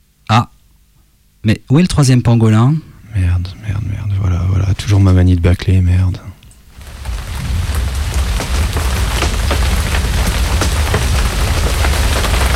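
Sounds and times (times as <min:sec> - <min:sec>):
speech: 0:00.3 - 0:00.5, 0:01.4 - 0:03.6, 0:04.8 - 0:06.3
steady dense rain pouring down in Paris: 0:06.7 - 0:12.5.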